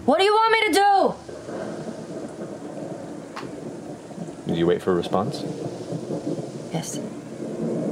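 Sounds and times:
speech: 0.0 - 1.2, 4.6 - 5.7, 6.8 - 7.2
rain-like hiss: 0.0 - 7.9
rolling thunder: 0.0 - 7.9
sharp crackle: 1.1 - 7.9.

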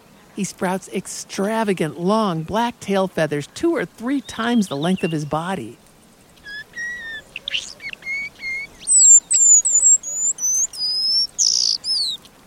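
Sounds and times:
speech: 0.4 - 5.8
paradise whydah calling in high thin whistles and buzzy chirps: 6.4 - 12.3.

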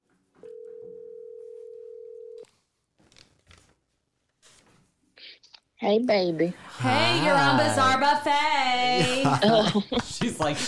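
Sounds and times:
quiet rustling: 0.0 - 5.2
phone ringback tone: 0.4 - 2.4
speech: 5.8 - 10.6
laughter: 8.8 - 10.6.

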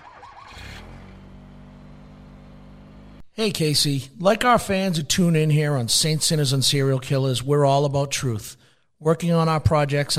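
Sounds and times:
car engine cranking, starting and pulling away: 0.0 - 3.4
speech: 3.4 - 10.1.

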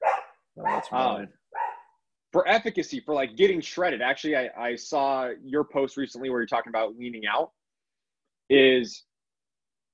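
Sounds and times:
puppies barking: 0.0 - 1.9
speech: 0.6 - 1.4, 2.3 - 7.6, 8.5 - 9.1.

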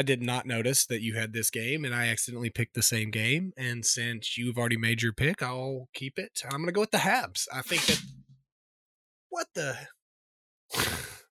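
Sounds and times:
speech: 0.0 - 8.2, 9.3 - 10.0, 10.7 - 11.0
sneeze: 7.7 - 8.1, 10.7 - 11.2.

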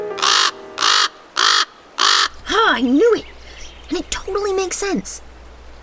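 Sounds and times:
raven cawing: 0.2 - 2.8
speech: 4.8 - 5.3.

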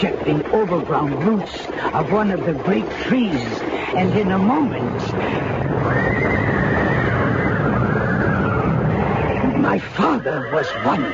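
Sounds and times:
speech: 0.0 - 6.5, 9.6 - 11.1
dense rumble of movement: 0.0 - 11.1
faint hoof clatter: 0.0 - 11.1
panicked horse whinnying as a carriage overturns: 5.6 - 11.1.

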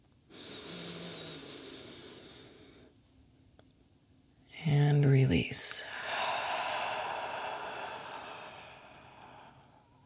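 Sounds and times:
long deep inhale and exhale breathing: 0.3 - 3.0, 5.8 - 10.0
speech: 4.6 - 6.0.

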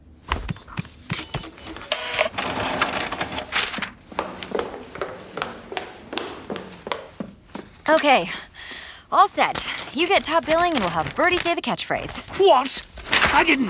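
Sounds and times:
short electronic printer beeps: 0.5 - 2.3, 3.2 - 3.7
printer busy mechanical whir: 0.8 - 3.9
speech: 7.9 - 8.5, 9.1 - 12.7, 13.4 - 13.6.

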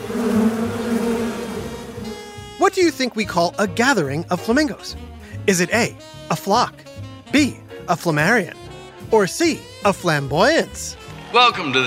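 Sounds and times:
dense swarm of bees buzzing: 0.0 - 2.6
speech: 2.7 - 11.8.

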